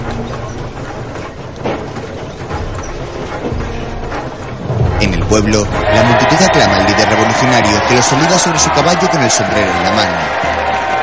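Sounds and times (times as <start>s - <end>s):
faint rhythmic clatter of train: 0.0s - 5.5s
train carrying soldiers rolling along the track: 0.0s - 11.0s
speech: 5.3s - 10.7s.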